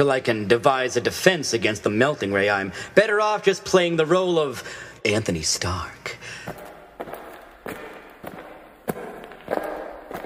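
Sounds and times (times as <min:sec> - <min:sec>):
speech: 0:00.0 - 0:06.6
running footsteps: 0:06.4 - 0:10.2.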